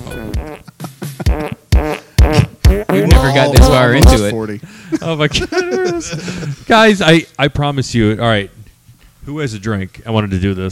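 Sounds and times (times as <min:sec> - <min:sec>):
loud buzzy sputtering fart sounds: 0:00.0 - 0:04.3
laughter: 0:00.6 - 0:01.7, 0:04.9 - 0:06.6
speech: 0:03.4 - 0:08.6, 0:09.2 - 0:10.6.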